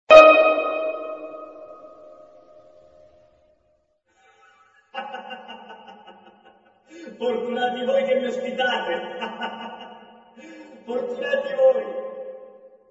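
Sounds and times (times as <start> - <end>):
percussion: 0.0 - 2.4
laughter: 4.2 - 7.4, 8.8 - 11.1
person speaking in voice-over: 6.9 - 9.5, 10.4 - 12.0.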